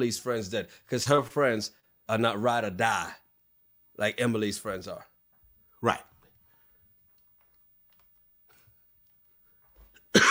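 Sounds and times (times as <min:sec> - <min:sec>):
speech: 0:00.0 - 0:03.2, 0:04.0 - 0:05.1, 0:05.8 - 0:06.1
faint clicks and taps: 0:07.0 - 0:10.1.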